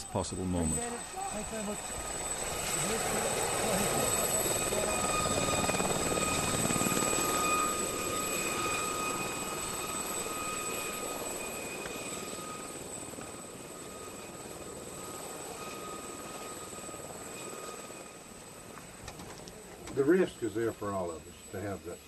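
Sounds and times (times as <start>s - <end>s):
helicopter rotor blades thrumming: 0.0s - 21.8s
high helicopter engine whine: 0.0s - 22.0s
speech: 0.1s - 2.2s, 2.8s - 5.0s, 20.0s - 22.0s.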